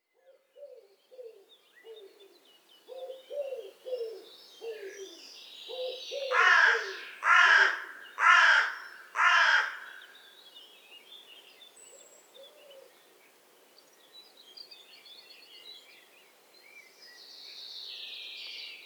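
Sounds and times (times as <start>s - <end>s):
Carrion crow Corvus corone soft low croaks: 6.3s - 10.2s.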